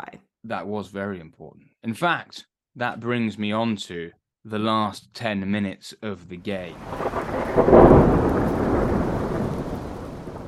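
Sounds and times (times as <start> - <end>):
speech: 0.1 - 8.6
steady rain on a grey day in Treviso: 6.6 - 10.4
deep rumble of thunder in Treviso: 6.8 - 10.4.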